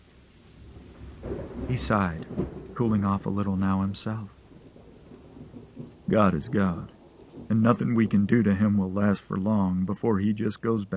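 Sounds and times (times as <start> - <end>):
deep rumble of thunder: 0.0 - 10.9
heavy rain pouring down in a thunderstorm: 0.0 - 10.9
speech: 1.7 - 4.4, 6.1 - 10.9.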